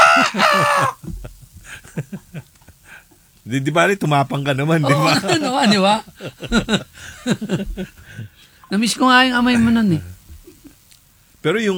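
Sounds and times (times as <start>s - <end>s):
loud brassy chicken squawk: 0.0s - 1.0s
laughter: 0.0s - 2.9s, 4.6s - 8.3s
speech: 0.3s - 1.1s, 3.5s - 8.0s, 8.7s - 10.1s, 11.4s - 11.7s.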